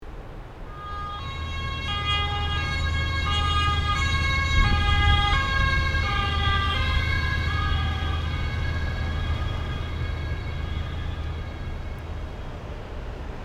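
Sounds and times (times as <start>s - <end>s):
ambulance emergency siren passing by: 0.7s - 13.2s.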